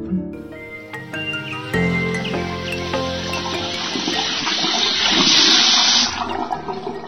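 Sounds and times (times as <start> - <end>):
music playing: 0.3 - 5.7
water gushing from an open tap: 2.5 - 7.0.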